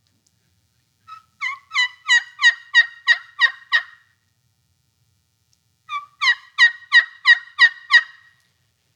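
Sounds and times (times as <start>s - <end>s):
turkey hen yelps calling to attract a tom turkey: 1.1s - 4.0s, 5.9s - 8.2s.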